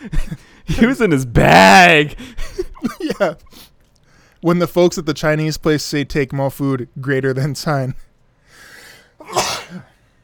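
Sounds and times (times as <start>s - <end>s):
speech: 0.0s - 2.4s, 3.2s - 3.7s, 4.4s - 8.1s
person sneezing: 9.2s - 10.0s.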